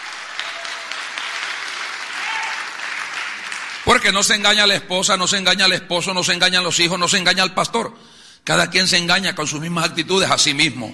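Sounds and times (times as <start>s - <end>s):
large crowd clapping in a reverberant room: 0.0s - 4.3s
faint voice or cheer: 2.2s - 2.7s
speech: 3.8s - 10.9s.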